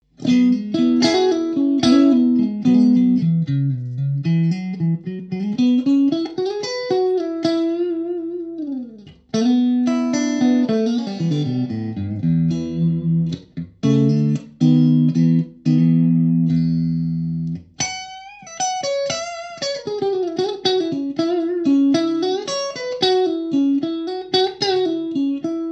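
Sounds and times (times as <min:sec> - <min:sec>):
56 Strat electric guitar, clean, neck and middle pickups: 0:00.0 - 0:25.7.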